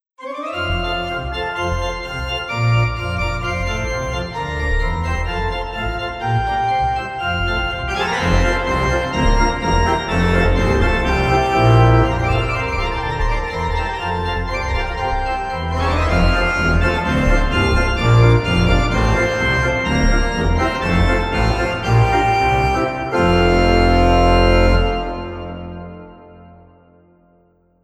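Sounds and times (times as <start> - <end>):
organ playing: 0.2 - 27.3.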